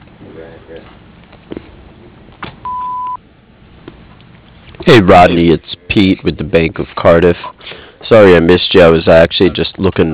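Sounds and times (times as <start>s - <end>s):
speech: 0.4s - 1.6s, 4.8s - 10.1s
high-pitched voicemail answering machine beep: 2.6s - 3.2s.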